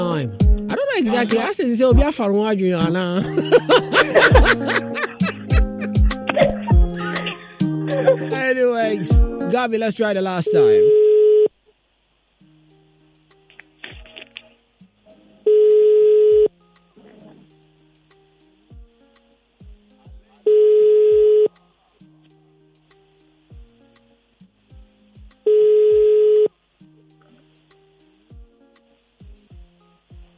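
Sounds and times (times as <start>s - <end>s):
speech: 0.1s - 4.9s, 9.6s - 11.0s
laughter: 3.2s - 8.6s
phone ringback tone: 10.5s - 11.5s, 15.4s - 16.5s, 20.5s - 21.5s, 25.5s - 26.5s.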